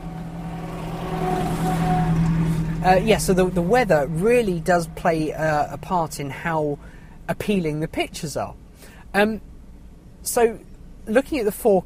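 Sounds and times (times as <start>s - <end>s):
classic cars driving past at an outdoor car display event: 0.0s - 7.3s
speech: 2.8s - 9.5s, 10.2s - 11.8s.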